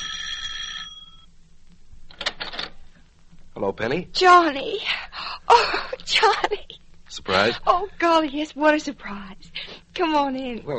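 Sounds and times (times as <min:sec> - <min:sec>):
electric doorbell ringing: 0:00.0 - 0:01.3
speech: 0:03.6 - 0:10.7.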